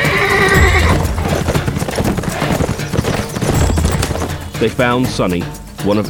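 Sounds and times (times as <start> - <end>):
horse whinnying: 0.0 - 4.7
horse hooves clattering on hard ground: 0.0 - 6.0
speech: 4.6 - 6.0.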